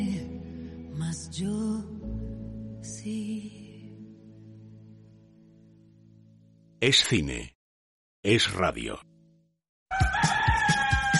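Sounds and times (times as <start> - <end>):
speech: 1.1 - 2.0, 6.8 - 7.6, 8.2 - 9.1
rooster crowing: 9.9 - 11.1.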